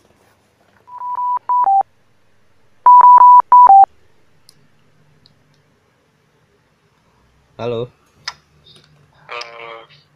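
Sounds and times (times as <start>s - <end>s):
electronic phone keypad DTMF dialing beeps: 0.9s - 1.9s, 2.8s - 3.9s
speech: 7.6s - 8.0s.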